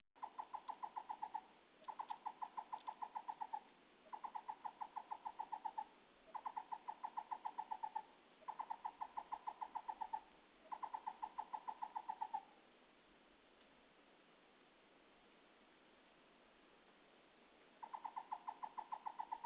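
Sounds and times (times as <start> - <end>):
Chinese barbet calling in hollow notes at Tianbaoyan nature reserve in sunny weather: 0.2 - 12.5, 17.8 - 19.4.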